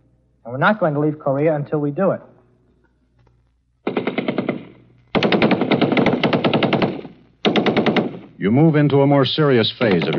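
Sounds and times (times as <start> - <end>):
speech: 0.4 - 2.3, 8.4 - 10.1
machine gun firing live bullets on an army infiltration course: 3.8 - 8.4, 9.8 - 10.1.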